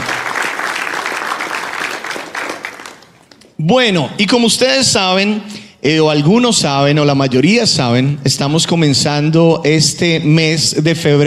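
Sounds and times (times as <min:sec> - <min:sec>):
audience applauding: 0:00.0 - 0:03.5
speech: 0:03.6 - 0:11.2.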